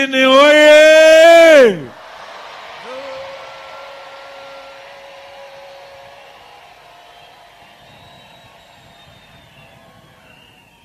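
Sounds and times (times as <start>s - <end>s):
speech: 0.0s - 0.8s
crowd of women in Matutwini, Maputo shouting together: 1.9s - 7.8s.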